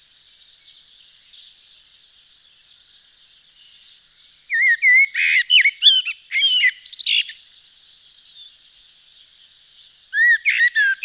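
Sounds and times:
Eurasian blackbird song in Nord, France: 0:00.0 - 0:11.0
high bird chirping: 0:03.8 - 0:09.1, 0:10.1 - 0:11.0.

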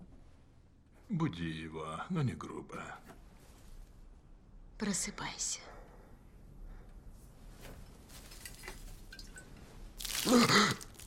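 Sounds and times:
speech: 0:01.1 - 0:03.2, 0:04.8 - 0:05.8, 0:10.2 - 0:10.9
faint water drips: 0:08.4 - 0:11.0.

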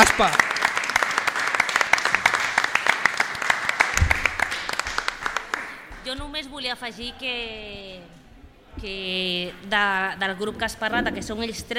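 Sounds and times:
group of people applauding: 0:00.0 - 0:06.1
speech: 0:00.2 - 0:00.5, 0:06.4 - 0:08.2, 0:08.8 - 0:11.7.

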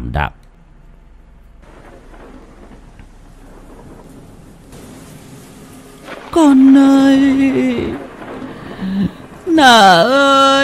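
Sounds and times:
speech: 0:00.1 - 0:00.4, 0:06.3 - 0:08.0, 0:09.6 - 0:10.6
low rumbling under heavy rain: 0:00.3 - 0:10.6
heavy rain outside a house in a village at night: 0:01.6 - 0:10.6.

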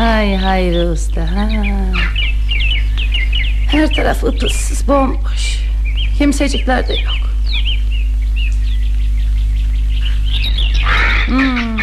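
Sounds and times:
faint chirps: 0:00.0 - 0:11.8
steady low hum: 0:00.0 - 0:11.8
speech: 0:00.2 - 0:02.3, 0:03.7 - 0:05.6, 0:06.2 - 0:07.3, 0:11.3 - 0:11.8
crows cawing outdoors in a deserted village: 0:01.9 - 0:04.0, 0:06.9 - 0:11.8.

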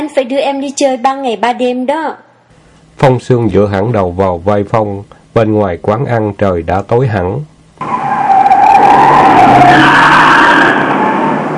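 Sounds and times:
speech: 0:00.0 - 0:02.2, 0:03.0 - 0:08.0
car tires screeching cornering sharply at a street intersection: 0:07.8 - 0:11.5.

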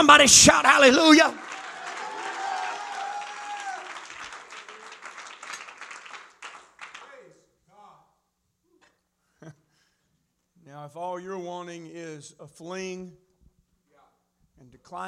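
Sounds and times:
speech: 0:00.0 - 0:01.4, 0:10.8 - 0:13.2, 0:14.6 - 0:15.0
church congregation clapping during a sermon: 0:00.0 - 0:07.4.

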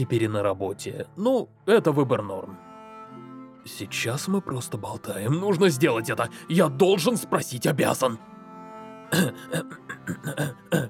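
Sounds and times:
speech: 0:00.0 - 0:02.7, 0:03.6 - 0:08.3, 0:09.1 - 0:10.8
man clearing throat: 0:09.1 - 0:10.8.

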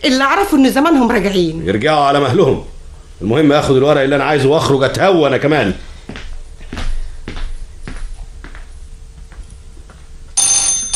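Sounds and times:
speech: 0:00.0 - 0:06.8
loud bright telephone ring: 0:10.4 - 0:10.9.

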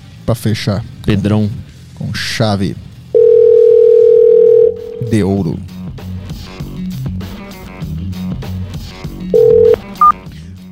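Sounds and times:
speech: 0:00.3 - 0:02.9, 0:05.0 - 0:05.8
telephone call tone: 0:03.2 - 0:05.2, 0:09.4 - 0:10.2
steady music: 0:04.5 - 0:10.7.

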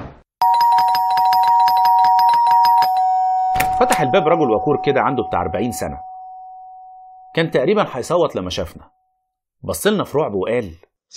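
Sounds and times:
apartment doorbell held down on a stairwell landing, continuous electric ring: 0:00.4 - 0:08.0
speech: 0:03.8 - 0:06.1, 0:07.4 - 0:09.0, 0:09.6 - 0:11.1.

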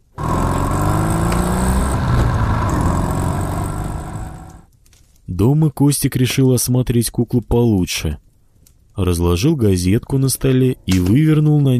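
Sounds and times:
motorcycle with a sidecar engine starting: 0:00.0 - 0:04.7
speech: 0:05.4 - 0:08.2, 0:09.0 - 0:11.7.

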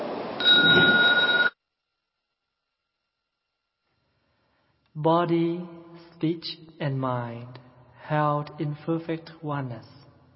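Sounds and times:
bell struck in a Buddhist temple: 0:00.4 - 0:01.6
speech: 0:05.0 - 0:10.0.

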